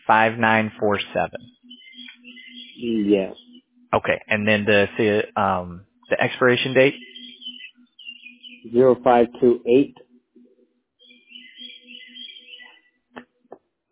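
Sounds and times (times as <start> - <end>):
low steady hum: 0.0 - 1.6, 4.0 - 7.0, 8.6 - 10.2
birds chirping and tweeting outdoors on a wooded property: 0.0 - 13.0
speech: 0.1 - 1.6, 2.8 - 7.1, 8.6 - 10.0.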